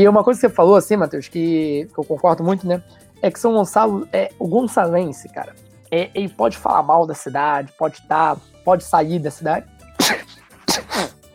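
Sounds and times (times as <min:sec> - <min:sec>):
speech: 0:00.0 - 0:11.2
person sneezing loudly: 0:10.0 - 0:11.3.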